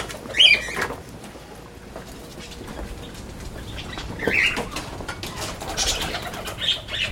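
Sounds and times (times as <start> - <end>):
parakeets chirping: 0.2 - 0.9, 2.3 - 7.1.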